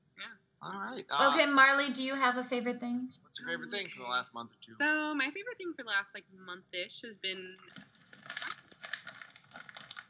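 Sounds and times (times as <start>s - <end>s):
speech: 0.6s - 7.9s
chocolate wrapper crinkling as it is opened: 7.7s - 10.0s.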